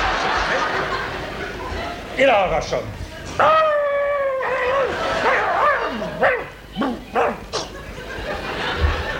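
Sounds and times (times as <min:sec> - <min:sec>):
laughter: 0:00.0 - 0:02.2, 0:04.2 - 0:09.1
speech: 0:02.2 - 0:03.7
person imitating a dog howling and barking: 0:03.4 - 0:07.7.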